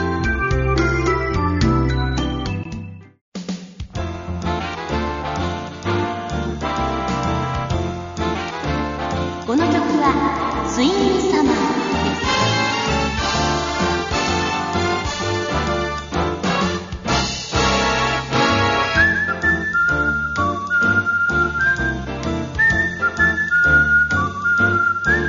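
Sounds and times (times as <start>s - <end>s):
bright whistled melody: 0.0s - 3.2s, 18.7s - 25.2s
full upbeat band accompaniment: 0.0s - 25.2s.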